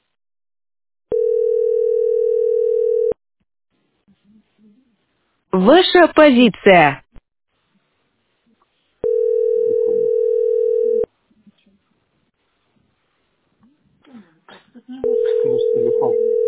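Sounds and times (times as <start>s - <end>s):
telephone line tone: 1.1s - 3.2s, 9.0s - 11.1s, 15.0s - 16.4s
speech: 5.6s - 7.0s
people talking quietly: 13.6s - 16.2s.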